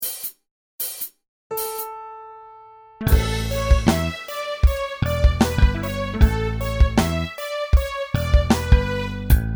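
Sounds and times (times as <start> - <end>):
violin playing as rap backing: 3.1 - 9.4.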